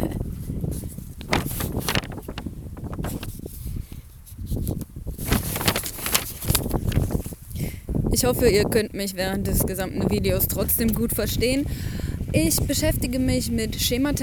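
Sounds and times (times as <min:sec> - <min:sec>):
strong outdoor wind buffeting the microphone: 0:00.0 - 0:14.2
faint rustling: 0:00.3 - 0:07.6
speech: 0:08.2 - 0:14.2.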